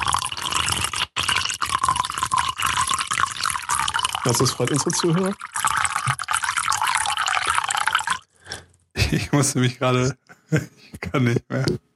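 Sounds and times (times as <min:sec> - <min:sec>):
water pouring into a cup: 0:00.0 - 0:08.6
speech: 0:04.2 - 0:05.5, 0:09.1 - 0:11.9.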